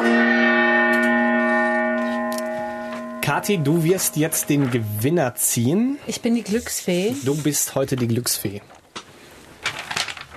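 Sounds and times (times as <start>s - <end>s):
traditional gong struck before a prize draw: 0.0s - 5.8s
speech: 3.3s - 8.8s.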